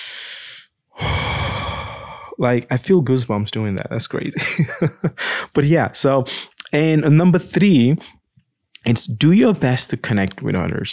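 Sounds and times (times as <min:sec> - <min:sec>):
deep breath drawn in through the nose: 0:00.0 - 0:02.4
speech: 0:02.4 - 0:08.2, 0:08.8 - 0:10.9.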